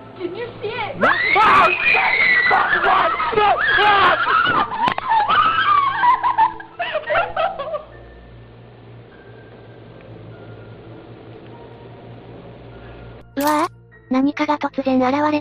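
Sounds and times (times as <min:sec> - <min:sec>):
speech: 0:00.2 - 0:04.9, 0:14.2 - 0:15.4
several people screaming in panic: 0:01.0 - 0:06.4
laughter: 0:02.4 - 0:07.9.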